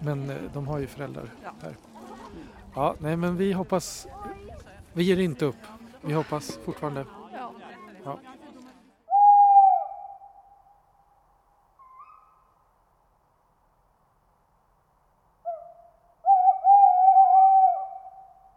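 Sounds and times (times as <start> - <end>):
speech: 0.0 - 7.2, 8.0 - 8.4
owl hooting: 9.1 - 10.5, 11.8 - 12.5, 15.4 - 18.5.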